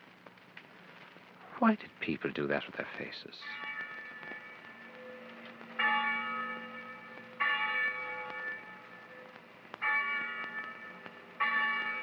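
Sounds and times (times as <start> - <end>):
speech: 1.6 - 3.7
church bell tolling: 3.4 - 12.0.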